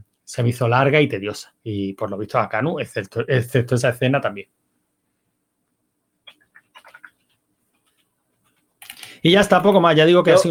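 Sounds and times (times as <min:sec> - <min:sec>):
speech: 0:00.3 - 0:04.6, 0:09.2 - 0:10.4
typing on a mechanical keyboard: 0:08.8 - 0:09.1.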